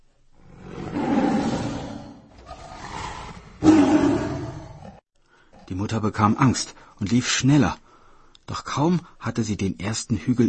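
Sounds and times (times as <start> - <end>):
tiger roaring: 0.4 - 5.0
speech: 5.8 - 7.8, 8.5 - 10.4.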